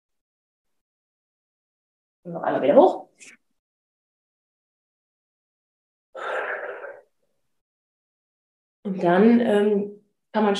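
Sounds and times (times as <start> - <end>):
speech: 2.2 - 3.4, 8.9 - 10.5
breathy inhale: 6.2 - 7.1
loud forceful exhale in a breathing exercise for stress relief: 6.2 - 7.1.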